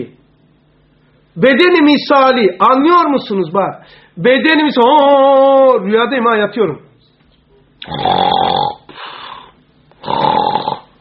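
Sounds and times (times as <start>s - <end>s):
speech: 1.4s - 6.9s, 7.8s - 8.3s
person imitating snoring with their voice: 7.8s - 10.9s.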